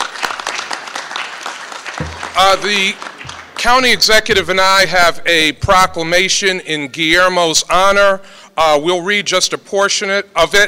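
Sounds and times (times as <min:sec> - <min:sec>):
crowd applauding at a civic honoring ceremony: 0:00.0 - 0:04.4
speech: 0:02.4 - 0:10.6.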